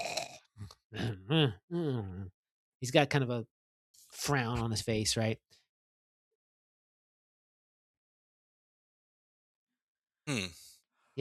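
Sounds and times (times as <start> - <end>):
voice imitating soft snoring of a drunk man: 0.0 - 0.4, 10.3 - 10.7
speech: 0.9 - 3.6, 4.2 - 5.6, 10.3 - 10.6.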